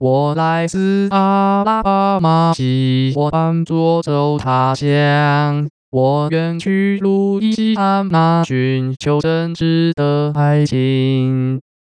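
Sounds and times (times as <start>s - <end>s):
synthetic male singing voice: 0.0s - 11.7s.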